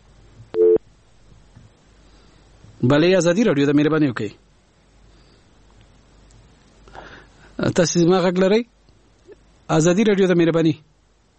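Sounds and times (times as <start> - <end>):
telephone busy signal after a caller's line drops: 0.5 - 0.8
speech: 2.8 - 4.4, 7.7 - 8.8, 9.7 - 10.9.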